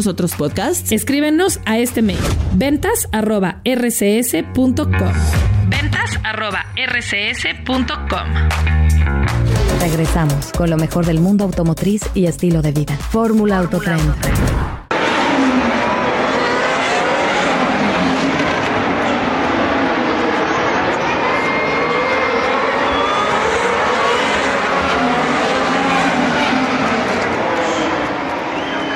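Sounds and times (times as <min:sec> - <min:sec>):
speech: 0:00.0 - 0:09.2, 0:09.8 - 0:14.7
single-seater race car engines roaring: 0:14.9 - 0:28.9.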